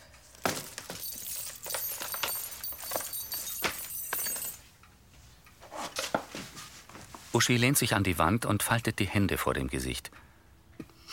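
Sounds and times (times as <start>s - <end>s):
bunch of keys jingling and clinking as set down at a coat rack: 0.4s - 4.7s
speech: 7.4s - 10.2s.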